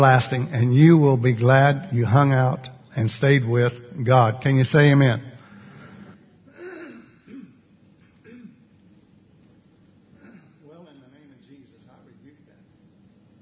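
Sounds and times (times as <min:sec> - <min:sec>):
speech: 0:00.0 - 0:05.3
man clearing his throat in rough gravelly bursts: 0:06.5 - 0:08.7, 0:10.2 - 0:10.6.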